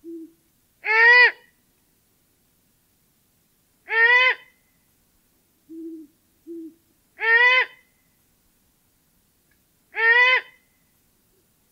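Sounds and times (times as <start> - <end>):
great horned owl low hooting: 0.0 - 1.5, 3.9 - 4.6, 5.7 - 7.9, 9.9 - 10.6
great horned owl screeching: 7.2 - 7.8, 10.0 - 10.6.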